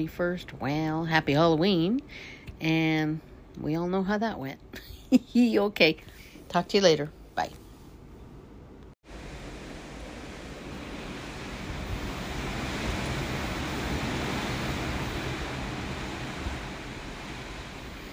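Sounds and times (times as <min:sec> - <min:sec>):
speech: 0:00.0 - 0:07.6
ocean waves rushing past a cruise ship under way at sea: 0:09.0 - 0:18.1.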